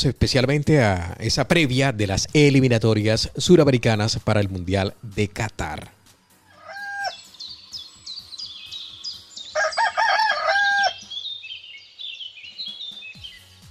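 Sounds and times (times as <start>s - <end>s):
speech: 0.0s - 6.0s
rooster crowing within a humorous song: 6.5s - 7.3s, 9.4s - 11.1s.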